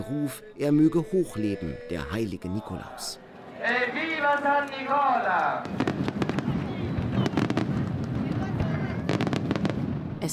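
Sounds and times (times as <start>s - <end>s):
speech: 0.0s - 6.1s
firecrackers and rockets exploding over a bay: 5.6s - 10.3s.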